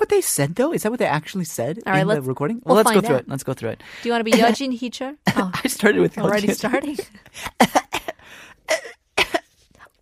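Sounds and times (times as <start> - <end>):
speech: 0.1 - 7.9
person coughing: 7.5 - 9.5.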